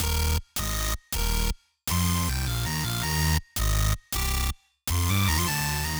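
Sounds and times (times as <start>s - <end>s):
processed bassline: 0.0s - 0.4s, 2.1s - 5.9s.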